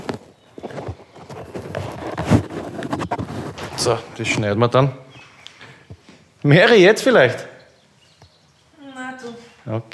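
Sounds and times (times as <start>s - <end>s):
windscreen being fitted over a microphone, rubbing and thumps: 0.0s - 4.6s
speech: 3.8s - 5.0s, 6.4s - 7.5s, 9.7s - 9.9s.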